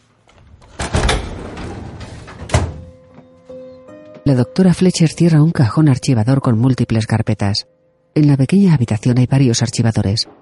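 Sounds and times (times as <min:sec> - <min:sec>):
door pulled shut with a dull thunk: 0:00.6 - 0:02.9
speech: 0:04.2 - 0:10.4.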